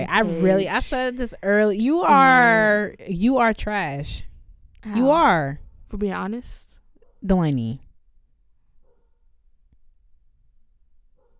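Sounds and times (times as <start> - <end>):
speech: 0.0 - 7.8
dog barking: 8.8 - 9.3, 11.2 - 11.3.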